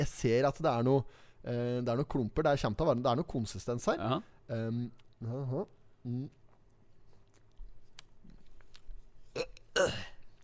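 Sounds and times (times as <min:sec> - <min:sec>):
speech: 0:00.1 - 0:06.4, 0:09.4 - 0:10.1
person chewing a hybrid bread roll: 0:06.3 - 0:10.4
person retching: 0:09.3 - 0:10.4
person gagging while eating a bread roll: 0:09.4 - 0:10.2.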